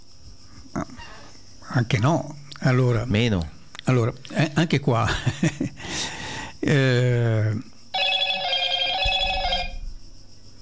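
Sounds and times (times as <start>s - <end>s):
speech: 1.8s - 6.0s, 6.6s - 7.7s
laughter: 5.0s - 5.8s
electronic telephone ring with a warbling tone: 8.0s - 9.8s.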